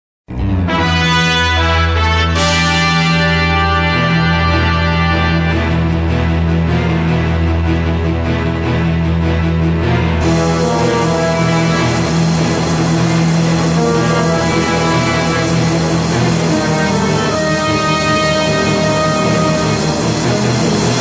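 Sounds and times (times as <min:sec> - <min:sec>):
orchestra: 0:00.3 - 0:20.9.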